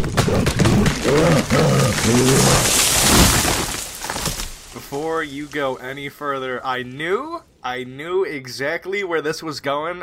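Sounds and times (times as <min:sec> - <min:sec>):
deep growling creature roar: 0:00.0 - 0:03.7
speech: 0:02.1 - 0:02.8, 0:04.9 - 0:10.0.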